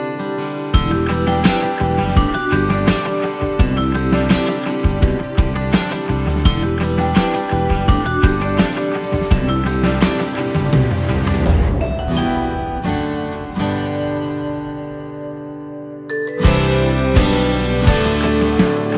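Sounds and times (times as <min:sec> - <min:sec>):
melodic metal percussion: 0:00.2 - 0:15.3, 0:16.1 - 0:18.9
Americana train beat rhythm: 0:00.8 - 0:11.7, 0:16.4 - 0:18.9.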